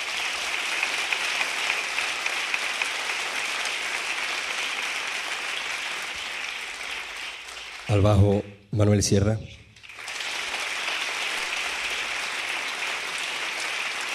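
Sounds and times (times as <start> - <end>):
audience clapping for the drummer: 0.0 - 8.5, 9.7 - 14.1
speech: 7.9 - 9.6.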